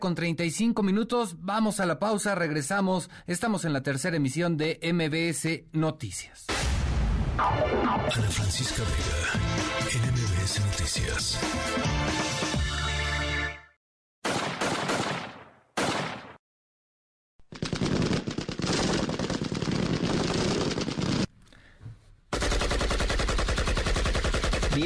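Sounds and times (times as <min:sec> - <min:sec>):
speech: 0:00.0 - 0:06.6, 0:07.4 - 0:12.9
rapid automatic gunfire: 0:14.2 - 0:16.4, 0:17.5 - 0:21.3, 0:22.3 - 0:24.8.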